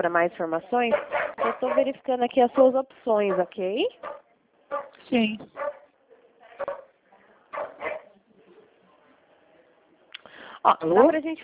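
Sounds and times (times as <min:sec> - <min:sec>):
speech: 0:00.0 - 0:04.1, 0:05.1 - 0:05.7, 0:10.6 - 0:11.4
dog barking: 0:00.9 - 0:02.7, 0:03.3 - 0:05.0, 0:05.6 - 0:05.9, 0:06.6 - 0:06.9, 0:07.5 - 0:08.1.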